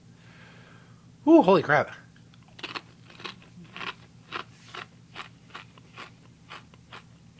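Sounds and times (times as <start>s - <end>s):
speech: 1.2s - 2.0s
potato chip topped with America Whip being chewed: 2.3s - 7.3s.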